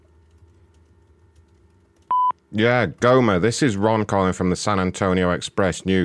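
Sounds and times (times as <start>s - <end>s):
quiet low phone-line hum: 2.1s - 2.4s
voicemail recording tone, sustained electronic beep: 2.1s - 2.4s
speech: 2.5s - 6.0s.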